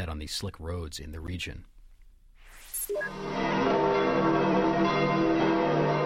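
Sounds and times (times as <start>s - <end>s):
speech: 0.0s - 1.8s
church bells pealing: 3.1s - 6.0s.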